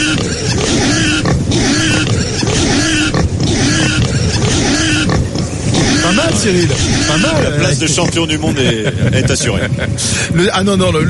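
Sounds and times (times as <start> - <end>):
man imitating a pig's squeals and grunts with his voice: 0.0 - 8.2
speech: 6.4 - 11.0
laughter: 7.0 - 10.5.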